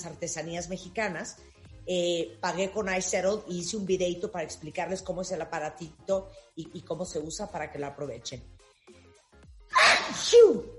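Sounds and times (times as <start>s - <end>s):
speech: 0.0s - 8.6s, 9.7s - 10.7s
person sneezing: 9.7s - 10.6s.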